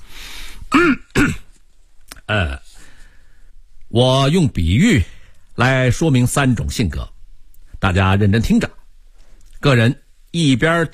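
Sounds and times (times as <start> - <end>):
man clearing his throat: 0.7 - 1.6
speech: 0.8 - 1.4, 2.3 - 2.6, 4.0 - 7.1, 7.8 - 8.8, 9.6 - 10.9.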